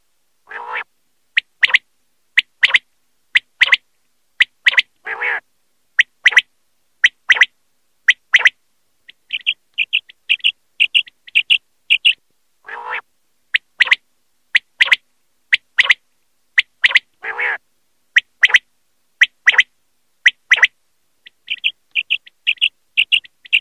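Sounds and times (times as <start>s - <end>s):
common quail calling: 0.5s - 1.8s, 2.4s - 3.8s, 4.4s - 5.4s, 6.0s - 7.5s, 8.1s - 16.0s, 16.6s - 17.6s, 18.2s - 18.6s, 19.2s - 19.7s, 20.3s - 23.6s.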